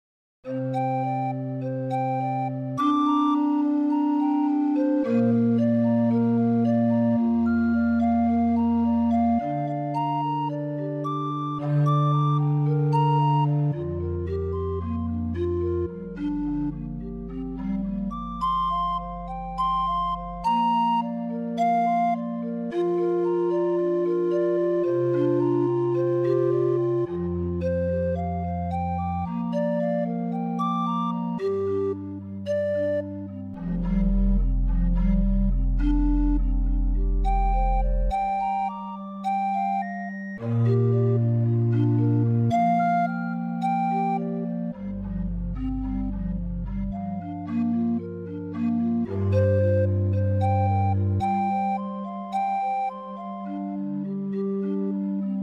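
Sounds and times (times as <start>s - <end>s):
pan flutes in a forest: 0.5s - 55.4s.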